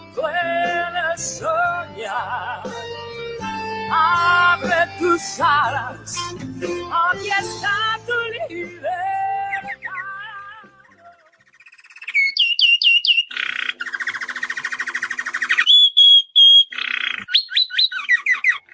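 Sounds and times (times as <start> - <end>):
speech: 1.2 - 2.8, 3.9 - 9.1
birds trilling and chirping: 9.4 - 18.7.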